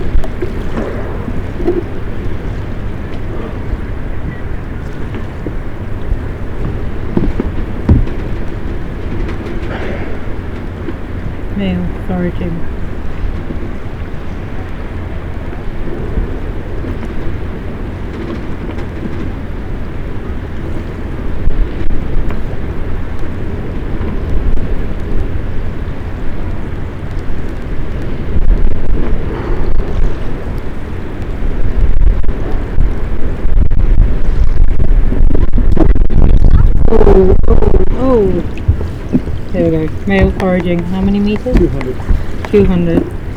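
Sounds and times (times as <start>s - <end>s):
wind blowing into a microphone outdoors: 0.0s - 43.3s
speech: 12.2s - 12.7s, 40.1s - 43.2s.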